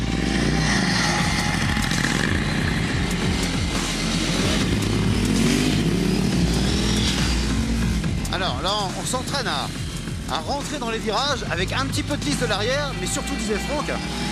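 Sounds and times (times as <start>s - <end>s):
motorcycle engine droning while riding on a slippery gravelly track: 0.0s - 14.3s
speech: 8.6s - 14.3s.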